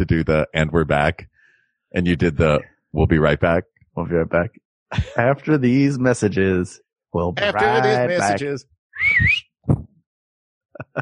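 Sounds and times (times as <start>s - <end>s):
speech: 0.0s - 1.3s, 1.9s - 9.9s, 10.8s - 10.9s
laughter: 4.9s - 5.8s, 7.4s - 8.5s, 10.8s - 10.9s
man whistling for his horse: 9.0s - 9.5s.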